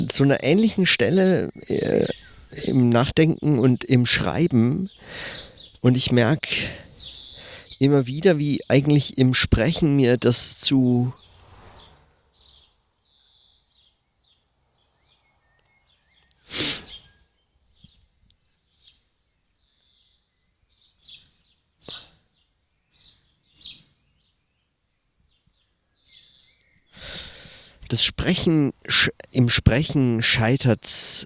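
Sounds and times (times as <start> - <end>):
speech: 0.0 - 6.8, 7.8 - 11.2, 27.9 - 31.2
birds chirping and twittering outdoors: 0.0 - 31.2
loud breathy bursts: 4.9 - 5.8, 6.5 - 7.8, 16.5 - 17.0, 27.0 - 27.8.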